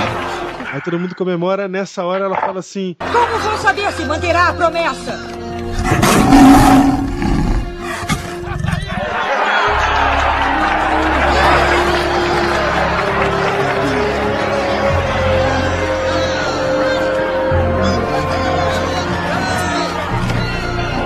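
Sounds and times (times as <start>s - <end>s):
laughter: 0.0s - 1.1s, 7.9s - 21.0s
speech: 0.7s - 6.4s
lion roaring: 5.7s - 8.8s.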